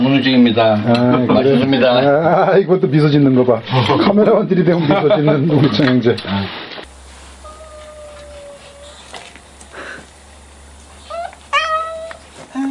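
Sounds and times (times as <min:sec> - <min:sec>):
speech: 0:00.0 - 0:06.7
steady low hum: 0:00.0 - 0:12.6
cat meowing: 0:07.4 - 0:09.1, 0:11.1 - 0:12.2.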